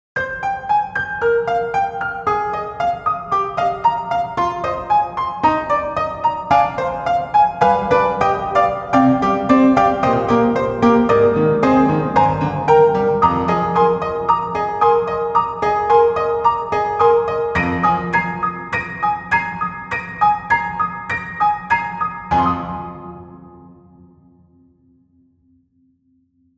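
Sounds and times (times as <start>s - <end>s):
stacked piano VSTi: 0.2s - 25.0s.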